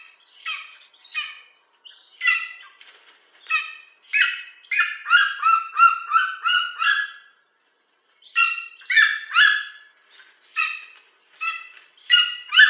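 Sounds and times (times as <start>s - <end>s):
golden eagle giving harmonic nasal yelping notes: 3.5s - 7.3s, 8.3s - 9.8s, 10.5s - 12.6s.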